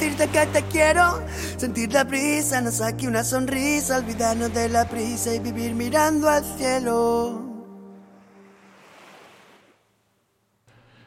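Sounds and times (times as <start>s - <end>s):
sea wave breaking: 0.0s - 1.8s, 3.6s - 5.6s, 7.6s - 10.2s
speech: 0.2s - 7.5s.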